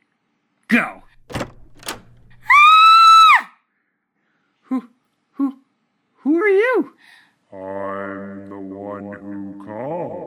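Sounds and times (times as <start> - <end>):
speech: 0.7 - 1.4
door creaking open with clunks: 1.0 - 2.9.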